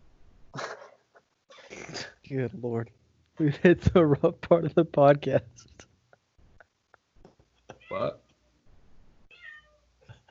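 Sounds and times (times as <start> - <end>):
low hum: 0.0 - 10.3
speech: 1.8 - 5.8
cat meowing: 7.8 - 8.2, 9.3 - 9.8.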